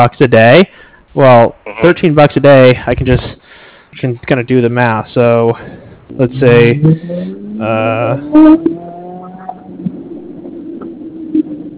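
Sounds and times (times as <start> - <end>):
speech: 0.0 - 8.9
Ferrari shop car exhaust revving: 6.3 - 11.7.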